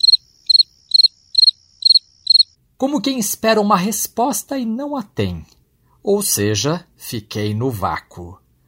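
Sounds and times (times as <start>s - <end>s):
cricket chirping: 0.0s - 2.6s
speech: 2.8s - 8.4s.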